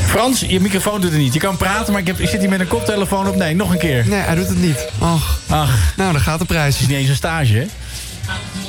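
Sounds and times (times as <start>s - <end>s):
speech: 0.1s - 8.4s
telephone keypad dual-tone beeps: 2.2s - 5.1s.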